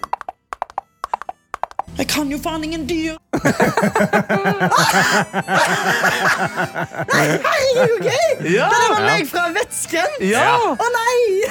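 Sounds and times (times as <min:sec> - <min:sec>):
small horse galloping on a hard surface: 0:00.0 - 0:01.9
speech: 0:02.0 - 0:11.4
laughter: 0:03.3 - 0:09.3.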